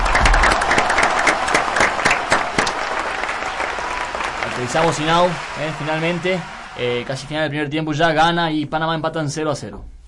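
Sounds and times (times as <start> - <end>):
group of people applauding: 0.0 - 7.7
speech: 4.6 - 10.0.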